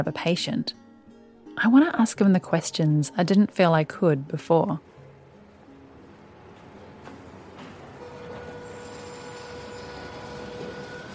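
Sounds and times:
speech: 0.0 - 0.8, 1.6 - 4.9
train rolling along rails: 6.4 - 11.1
train wheels squealing and whining: 8.0 - 11.1.

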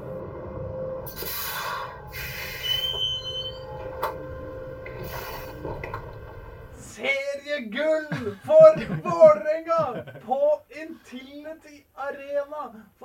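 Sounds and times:
tram rumbling along its rails: 0.0 - 7.0
tram wheels with metallic screeching and high squeals: 1.1 - 6.8
speech: 7.6 - 13.0
laughter: 8.0 - 10.4.

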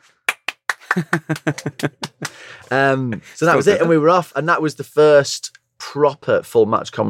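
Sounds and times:
hands clapping: 0.0 - 2.8
laughter: 0.8 - 4.1
speech: 1.0 - 7.0.

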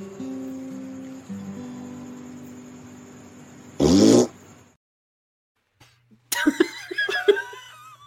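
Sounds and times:
loud buzzy fart: 3.8 - 4.4
people bubbling with laughter: 6.3 - 8.0.

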